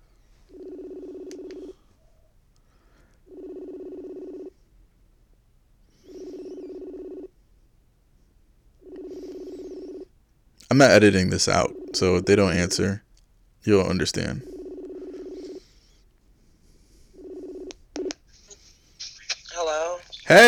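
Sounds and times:
buzzing phone line ring tones heard on the caller's end: 0.4 - 2.0, 2.9 - 4.6, 6.1 - 7.4, 8.8 - 13.0, 13.7 - 16.0, 16.8 - 18.9, 19.6 - 20.4
speech: 10.7 - 13.0, 13.6 - 14.5, 20.3 - 20.4.

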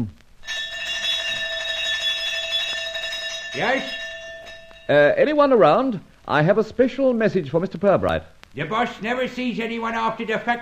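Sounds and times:
speech: 0.0 - 0.2, 3.6 - 4.0, 4.9 - 10.6
electric doorbell ringing with a bright buzzing ring: 0.4 - 5.0.

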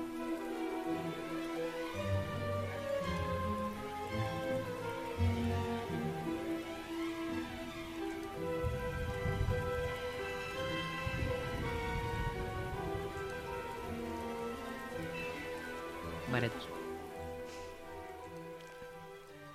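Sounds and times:
melodic music: 0.0 - 19.5
rain pattering on a hard street surface: 0.0 - 19.5.

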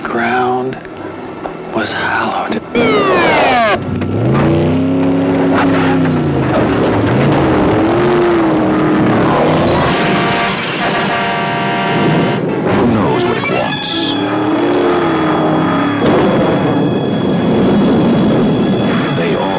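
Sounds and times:
car engine roaring and revving while accelerating: 1.1 - 19.5
high whining tone: 2.6 - 19.5.

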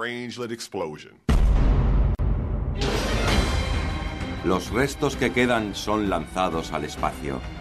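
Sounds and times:
speech: 0.0 - 1.7, 4.4 - 7.5
loud explosion with a deep rumble: 1.3 - 3.9.

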